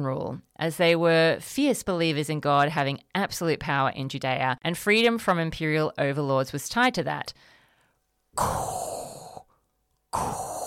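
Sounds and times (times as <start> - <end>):
speech: 0.0 - 7.5, 8.4 - 9.0, 10.1 - 10.5
heavy raspy breathing into the microphone imitating respirator breathing: 7.4 - 10.6.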